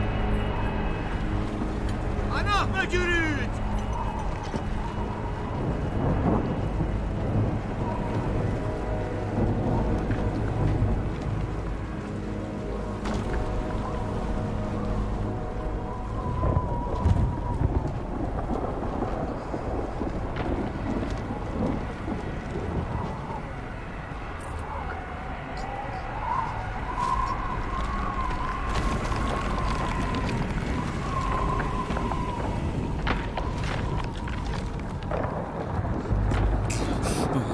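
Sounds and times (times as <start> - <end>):
heavy rain: 0.0 - 37.5
wind: 0.0 - 37.5
speech: 2.6 - 3.6
deep rumbling thunder: 3.6 - 24.8, 26.2 - 37.5.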